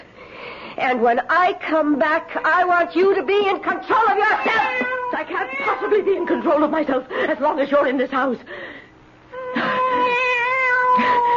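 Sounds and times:
speech: 0.8s - 8.8s
cat meowing: 4.2s - 6.5s, 9.4s - 11.3s.

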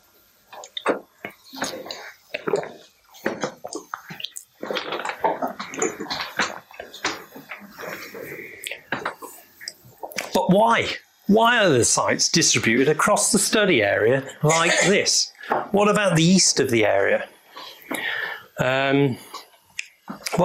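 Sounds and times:
person sipping water: 0.5s - 10.3s
gulping and liquid noises: 0.5s - 10.4s
speech: 10.5s - 17.3s, 18.6s - 19.3s.

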